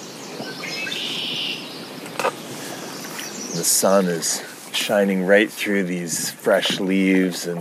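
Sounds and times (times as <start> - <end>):
red-winged blackbird buzzy trilling call in riverside grass: 0.0 - 3.6
soft outdoor hiss: 0.0 - 7.5
speech: 3.6 - 7.5.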